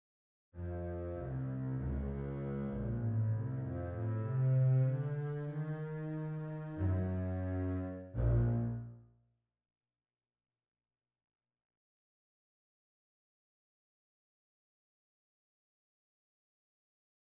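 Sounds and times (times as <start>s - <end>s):
double bass section: 0.6s - 9.0s.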